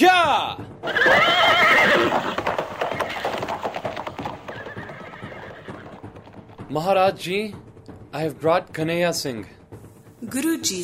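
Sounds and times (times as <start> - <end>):
hooves clip-clopping on hard ground: 0.2 - 10.8
horse whinnying: 0.8 - 6.6
speech: 6.7 - 9.6, 10.2 - 10.8.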